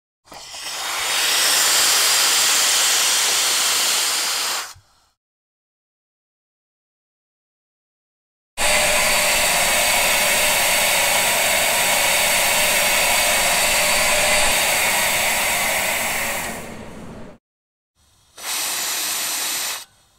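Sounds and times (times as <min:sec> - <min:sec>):
steam machine: 0:00.3 - 0:04.8, 0:08.6 - 0:17.4, 0:18.0 - 0:20.1.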